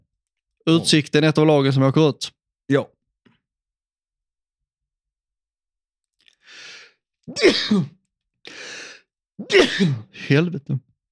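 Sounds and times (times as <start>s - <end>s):
speech: 0.6s - 2.9s, 7.3s - 8.6s, 9.4s - 10.9s
loud sneezes with sharp breathy intakes: 7.3s - 8.0s, 9.4s - 10.3s.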